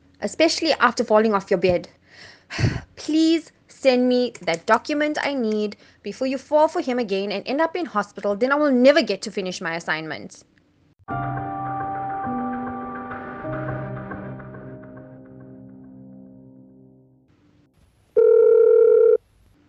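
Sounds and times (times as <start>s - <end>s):
speech: 0.2s - 10.5s, 11.1s - 11.4s
loud steady buzzing telephone ring tone: 18.2s - 19.2s.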